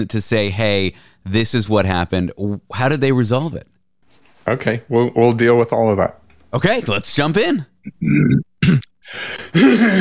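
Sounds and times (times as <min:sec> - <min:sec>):
speech: 0:00.0 - 0:09.9
person clearing throat with rough gravelly grunts: 0:07.8 - 0:09.9.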